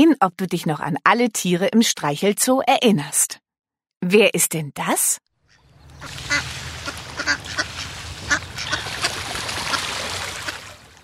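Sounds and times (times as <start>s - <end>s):
speech: 0.0s - 3.4s, 4.0s - 5.3s, 6.0s - 6.6s
ducks quacking in a busy chorus: 5.5s - 11.0s.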